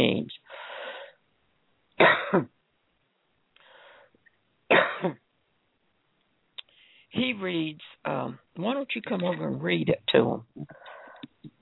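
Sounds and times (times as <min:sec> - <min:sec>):
person coughing: 0:02.0 - 0:02.5, 0:04.7 - 0:05.2
speech: 0:02.3 - 0:02.6, 0:05.0 - 0:05.2, 0:07.2 - 0:10.8.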